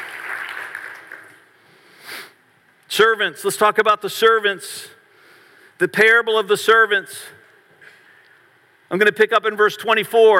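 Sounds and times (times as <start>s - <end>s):
audience applause: 0.0s - 1.5s
speech: 3.0s - 5.0s, 5.8s - 7.4s, 8.9s - 10.3s.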